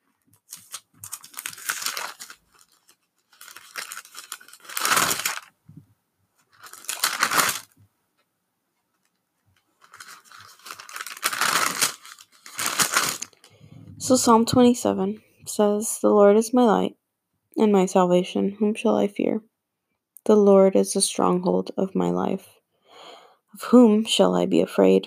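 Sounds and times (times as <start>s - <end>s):
pages of a book of scripture rustling and flipping: 0.2s - 5.5s, 6.4s - 7.8s, 8.9s - 13.5s
speech: 14.1s - 17.0s, 17.6s - 19.5s, 20.3s - 22.6s, 23.6s - 25.0s.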